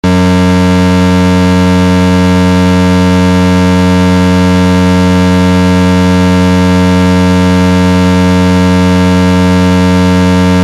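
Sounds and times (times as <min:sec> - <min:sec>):
Unitrol Rumbler air horn siren tone: 0:00.0 - 0:10.6.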